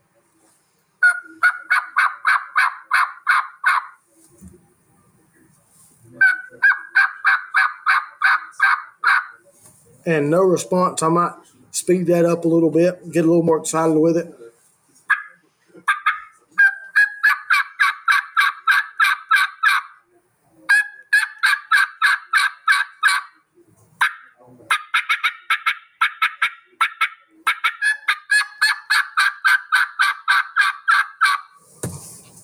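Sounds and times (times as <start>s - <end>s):
handheld turkey call producing raspy hen yelps in the woods: 1.0s - 4.0s, 6.2s - 9.4s, 15.1s - 20.0s, 20.7s - 23.4s, 24.0s - 31.6s
speech: 10.0s - 14.4s.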